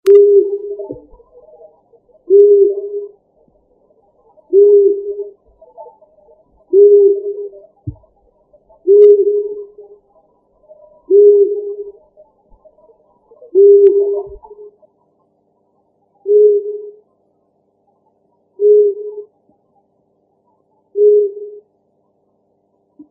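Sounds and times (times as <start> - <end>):
long-eared owl calling: 0.1 - 3.6, 4.2 - 10.0, 10.7 - 14.8, 16.2 - 17.0, 18.6 - 19.3, 20.7 - 21.7.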